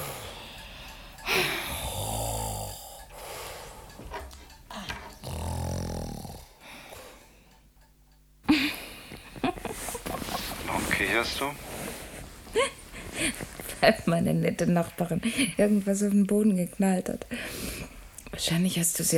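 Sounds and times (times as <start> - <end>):
person snoring while asleep: 1.2 - 3.8, 4.8 - 6.6
speech: 11.0 - 11.7, 12.5 - 17.6, 18.4 - 19.1.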